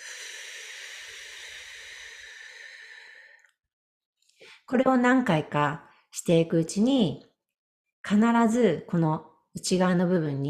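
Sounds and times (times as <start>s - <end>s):
slow exhale through the mouth during a guided breathing exercise: 0.0s - 3.4s
speech: 4.7s - 7.3s, 8.1s - 10.4s.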